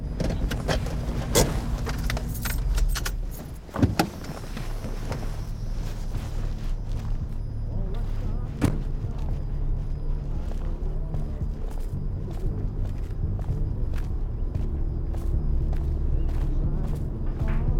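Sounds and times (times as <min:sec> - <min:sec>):
car engine humming at low speed driving through a city: 0:00.0 - 0:17.7
jingling keys: 0:00.2 - 0:04.7.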